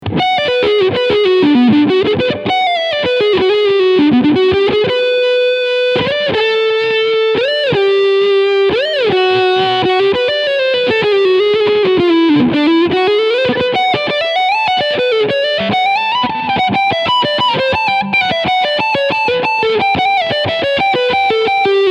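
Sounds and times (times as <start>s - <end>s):
electric guitar through front pickup: 0.0s - 21.8s.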